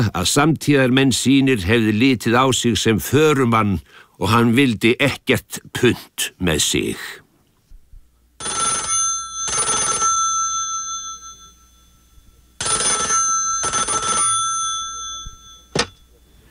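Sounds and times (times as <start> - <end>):
speech: 0.0 - 7.2, 8.4 - 8.8
telephone bell ringing: 8.4 - 16.4.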